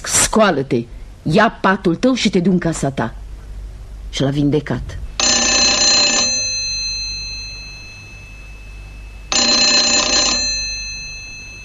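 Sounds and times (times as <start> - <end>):
speech: 0.4 - 3.2, 4.1 - 5.0
telephone ringing with a bright electric trill: 5.2 - 11.6.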